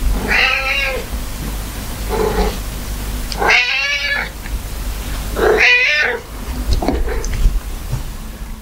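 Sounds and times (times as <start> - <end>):
low steady hum: 0.0 - 8.5
cat meowing insistently for attention: 0.2 - 1.1, 3.4 - 4.4, 5.4 - 6.2.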